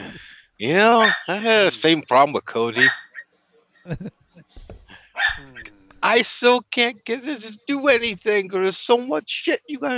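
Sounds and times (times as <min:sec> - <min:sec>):
laughter: 0:00.0 - 0:02.9, 0:03.9 - 0:04.1, 0:06.0 - 0:09.9
speech: 0:00.6 - 0:03.0, 0:03.9 - 0:04.2, 0:05.2 - 0:09.9
dog barking: 0:00.9 - 0:01.4, 0:02.8 - 0:03.0.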